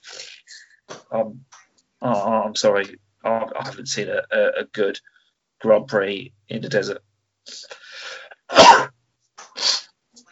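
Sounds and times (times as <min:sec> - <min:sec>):
speech: 0:01.1 - 0:07.8
faint breathy intake: 0:07.5 - 0:08.4
person sneezing: 0:07.5 - 0:08.9, 0:09.5 - 0:09.8.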